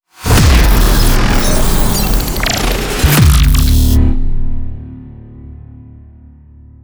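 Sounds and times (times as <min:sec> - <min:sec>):
aggressive logo sting: 0:00.2 - 0:04.9.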